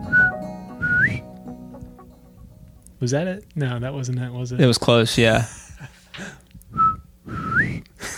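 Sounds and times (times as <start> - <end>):
person whistling an imitation bird call: 0.1 - 1.3, 6.8 - 7.8
speech: 3.0 - 5.9.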